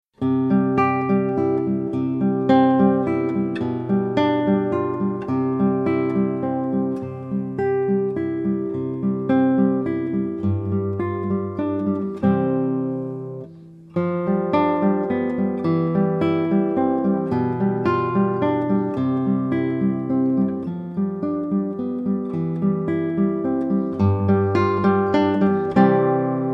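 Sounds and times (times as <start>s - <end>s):
waltz on guitar: 0.2s - 26.5s.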